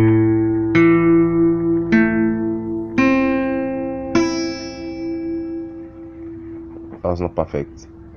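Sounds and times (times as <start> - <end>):
acoustic guitar strings plucked from the A string to the high E: 0.0 - 7.8
speech: 7.2 - 8.0.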